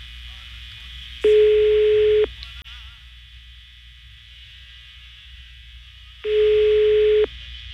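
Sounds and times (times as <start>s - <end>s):
telephone ringback tone on an unanswered call: 1.3s - 2.3s, 6.3s - 7.3s.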